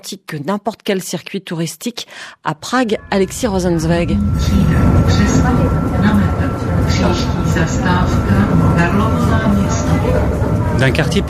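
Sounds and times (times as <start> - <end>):
speech: 0.0 - 6.2, 6.9 - 11.2
tram wheels rolling on rails in Prague: 3.1 - 11.2
murmur of passengers' voices on a tram: 4.4 - 11.2.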